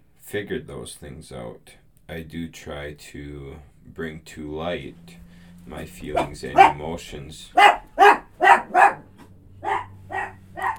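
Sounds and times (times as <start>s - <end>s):
speech: 0.3s - 7.7s
dogs barking: 6.0s - 10.7s.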